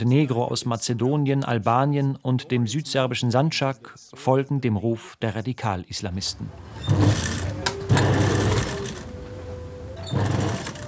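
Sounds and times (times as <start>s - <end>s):
speech: 0.0s - 7.6s
sewing machine in Novi Pazar, southern Serbia, running: 6.7s - 9.3s, 10.0s - 10.8s.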